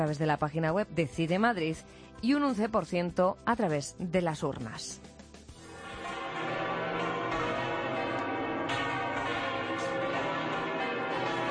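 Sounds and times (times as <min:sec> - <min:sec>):
speech: 0:00.0 - 0:05.1
several overlapping cathedral church bells pealing: 0:05.6 - 0:11.4.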